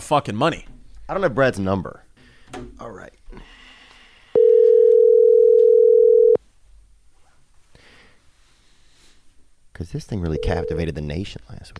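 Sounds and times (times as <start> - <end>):
speech: 0.1 - 3.5, 9.8 - 11.7
phone dialing beeps: 4.4 - 6.4, 10.4 - 10.8.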